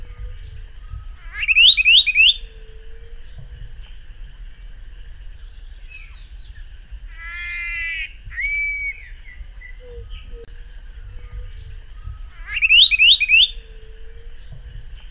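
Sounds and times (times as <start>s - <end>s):
Helmeted manakin Antilophila galeata calls: 1.1s - 2.6s, 7.1s - 10.5s, 12.2s - 13.9s.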